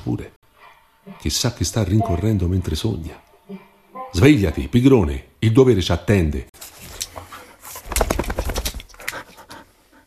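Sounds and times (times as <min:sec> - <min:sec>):
speech: 0:00.1 - 0:00.4, 0:01.0 - 0:06.5
rustling and shuffling: 0:06.6 - 0:09.8
dog shaking its whole body after waking up: 0:07.8 - 0:09.0.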